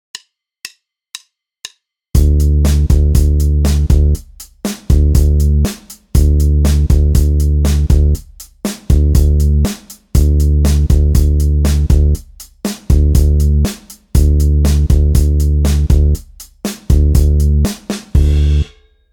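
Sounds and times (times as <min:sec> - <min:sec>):
beginner bass guitar: 0:02.2 - 0:04.3, 0:04.9 - 0:08.3, 0:08.9 - 0:12.3, 0:12.9 - 0:16.3, 0:16.9 - 0:18.7
beginner drums: 0:02.2 - 0:19.0.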